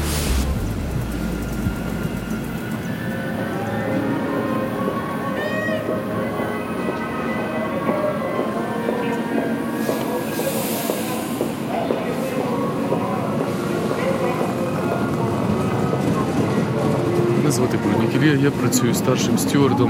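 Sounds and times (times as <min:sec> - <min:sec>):
passenger train rumbling along the rails toward the front line in Ukraine: 0:00.0 - 0:19.8
speech: 0:18.3 - 0:19.8.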